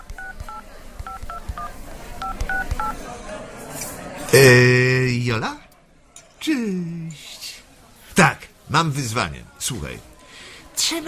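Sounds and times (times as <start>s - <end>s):
touch-tone beeps of a telephone number being dialed: 0.0s - 3.0s
speech: 4.3s - 5.6s, 8.7s - 10.1s.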